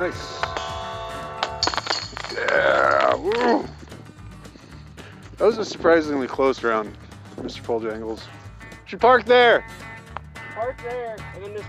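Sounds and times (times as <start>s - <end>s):
speech: 0.0s - 0.4s, 2.6s - 3.8s, 5.4s - 9.9s, 10.6s - 11.6s
flying disc hitting metal disc golf basket chains: 0.0s - 3.9s.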